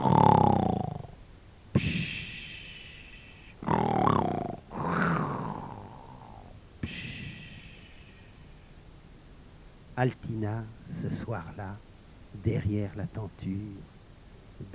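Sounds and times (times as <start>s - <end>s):
loud snoring of a sleeping witch: 0.0s - 1.2s, 3.6s - 7.8s
speech: 10.0s - 13.9s.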